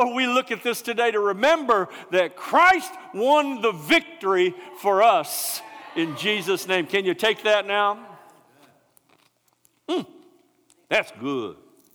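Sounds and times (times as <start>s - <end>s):
speech: 0.0s - 8.1s, 9.9s - 10.2s, 10.9s - 11.6s
chewing a crisp communion cracker: 8.4s - 10.9s, 11.8s - 11.9s.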